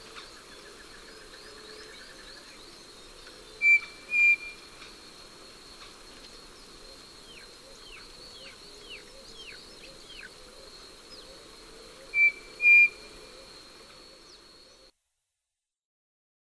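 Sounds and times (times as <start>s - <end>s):
Striped cuckoo Tapera naevia whistled notes: 3.6s - 4.6s, 12.1s - 13.1s.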